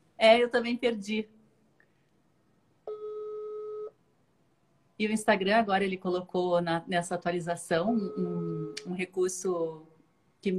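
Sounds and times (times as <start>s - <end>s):
faint hiss: 0.0s - 10.5s
speech: 0.2s - 1.4s, 5.0s - 10.5s
telephone call tone beep while dialing out: 2.9s - 3.9s, 8.0s - 8.8s.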